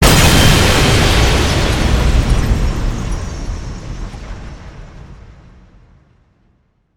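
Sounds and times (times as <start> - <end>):
bomb fragments and glass scattering: 0.0 - 4.2
powerful bomb explosion: 0.0 - 6.0.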